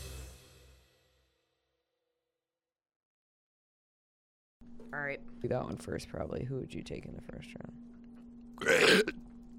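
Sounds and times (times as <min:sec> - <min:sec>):
faint steady hum: 0:04.6 - 0:09.5
speech: 0:04.9 - 0:07.9
loud burp: 0:08.5 - 0:09.2.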